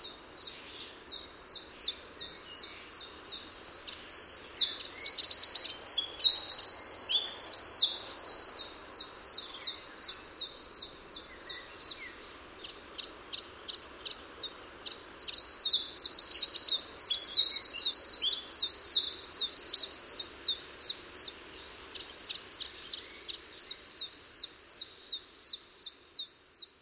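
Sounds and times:
Eurasian wren Troglodytes troglodytes singing: 0.0 - 26.8.

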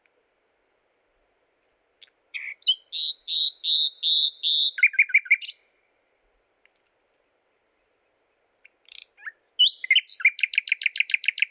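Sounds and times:
common nightingale (Luscinia megarhynchos) singing: 2.0 - 5.9, 6.6 - 11.5.

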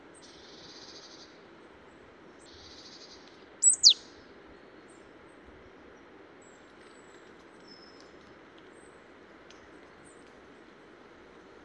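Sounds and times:
faint background hiss: 0.0 - 11.6
marsh tit call, Poecile palustris: 3.6 - 4.0.

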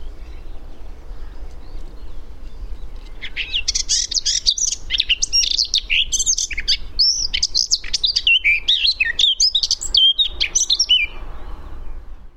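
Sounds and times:
Eurasian blackcap Sylvia atricapilla singing: 1.2 - 11.2.

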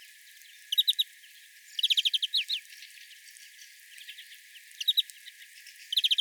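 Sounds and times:
European greenfinch Chloris chloris calls: 0.7 - 1.1, 1.8 - 2.6, 5.9 - 6.1.

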